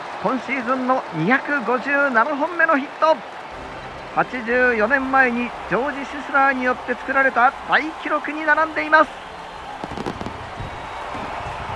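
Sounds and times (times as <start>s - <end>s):
large crowd roaring in a stadium: 0.0s - 11.7s
speech: 0.2s - 3.4s, 4.2s - 9.2s
fireworks bangs over a ballpark: 3.6s - 11.7s.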